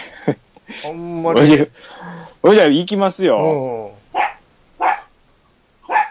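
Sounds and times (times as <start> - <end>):
speech: 0.2 - 3.9
dog barking: 4.1 - 5.1, 5.9 - 6.1.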